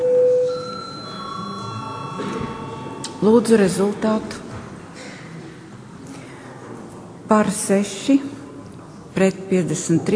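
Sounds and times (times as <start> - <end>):
bell rung to call a vote: 0.0 - 4.1
faint room murmur: 0.6 - 10.1
speech: 3.2 - 4.4, 7.3 - 8.4, 9.2 - 10.1.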